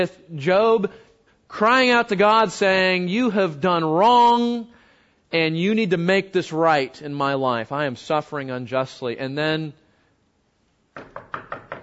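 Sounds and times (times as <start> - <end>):
speech: 0.0 - 9.8
knocking on a door: 11.0 - 11.8.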